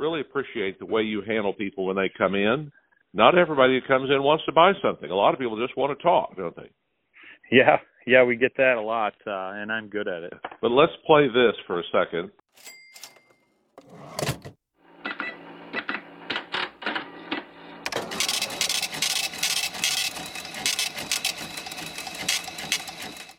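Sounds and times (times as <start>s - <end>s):
speech: 0.0s - 6.9s, 7.5s - 12.8s
mechanical cash register key clunks: 12.6s - 14.6s, 17.9s - 23.3s
mechanical cash register mechanism whirring and clattering: 12.6s - 23.3s.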